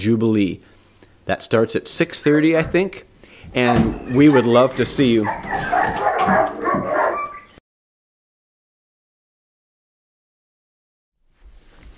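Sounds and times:
speech: 0.0 - 0.7, 1.3 - 6.7
dog barking and whimpering: 3.6 - 7.6.

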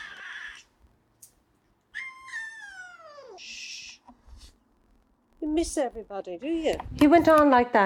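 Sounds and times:
distressed male cat howling: 0.0 - 0.7, 1.9 - 4.0
distressed male cat hissing: 2.0 - 4.6
speech: 5.5 - 7.8.

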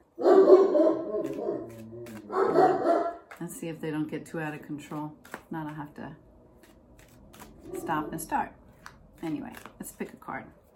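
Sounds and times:
dogs barking and yowling: 0.2 - 3.2
speech: 3.4 - 6.3, 7.7 - 8.6, 9.2 - 10.6.

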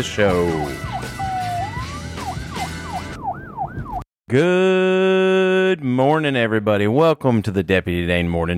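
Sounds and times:
speech: 0.0 - 1.3, 4.3 - 8.5
low rumble of traffic: 0.0 - 4.0
emergency vehicle siren wailing and yelping: 0.0 - 4.1.

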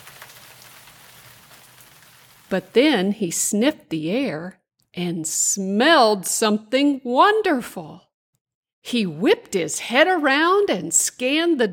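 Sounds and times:
rain pattering on a plastic covering: 0.0 - 2.8
speech: 2.5 - 8.1, 8.8 - 11.7.

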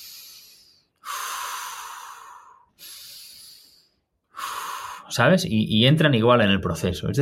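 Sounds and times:
person breathing in a connected rhythm: 0.0 - 5.1
speech: 5.1 - 7.2.

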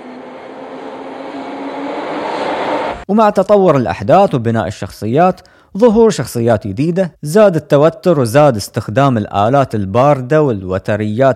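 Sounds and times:
train rumbling past at a train station: 0.0 - 3.0
faint high whine of a passing train: 0.0 - 3.1
speech: 3.1 - 11.3.

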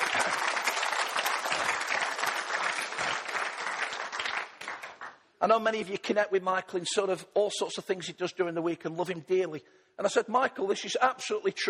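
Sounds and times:
audience applauding warmly: 0.0 - 5.2
speech: 5.4 - 11.6.

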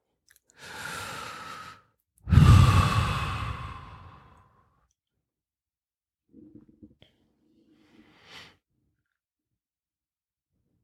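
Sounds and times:
slow deep meditative breathing: 0.6 - 4.4.

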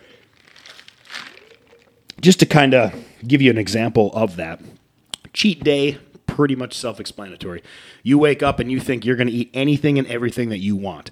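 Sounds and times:
slurping sip of tea: 0.0 - 2.2
speech: 2.2 - 11.1.

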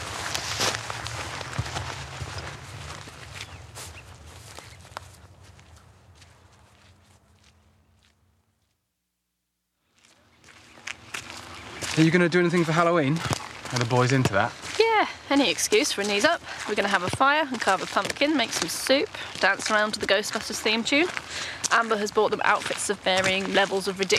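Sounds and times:
footsteps of people walking outdoors toward the woods in the evening: 0.0 - 8.8, 9.9 - 24.1
speech: 12.0 - 24.1.

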